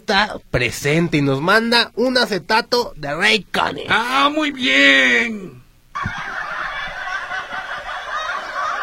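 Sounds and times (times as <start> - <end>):
speech: 0.1 - 6.2
canned studio laughter: 6.0 - 8.8.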